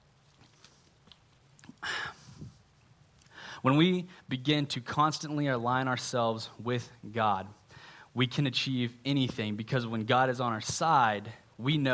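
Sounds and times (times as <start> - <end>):
person drinking water: 0.2 - 2.5
speech: 3.6 - 7.6, 8.2 - 11.9.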